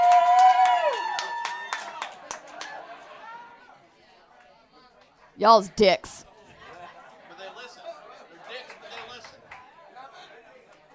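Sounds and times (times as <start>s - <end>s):
comedy-show audience member loud whoop sliding down in pitch: 0.0s - 2.1s
comedy-show audience clapping: 0.0s - 3.4s, 8.4s - 9.8s
speech: 5.4s - 6.3s.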